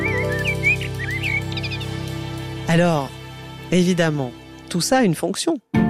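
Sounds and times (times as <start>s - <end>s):
song thrush singing: 0.0s - 3.8s
speech: 2.7s - 5.7s.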